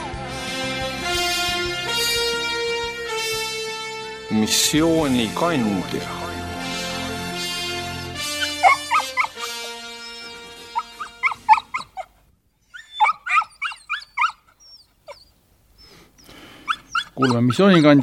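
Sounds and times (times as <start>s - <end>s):
sustained musical tone: 0.3s - 11.6s
speech: 4.3s - 6.2s, 17.2s - 18.0s
dog yelping, barking and whimpering: 8.2s - 18.0s.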